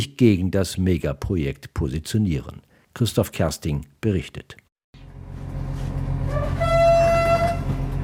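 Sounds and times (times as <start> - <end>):
speech: 0.0 - 4.6
express train rumbling departing a station: 5.2 - 8.0
train horn blast: 6.2 - 8.0.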